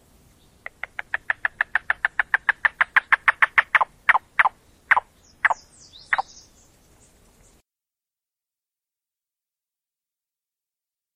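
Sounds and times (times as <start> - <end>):
yellow-billed cuckoo knocking series: 0.6 - 6.4.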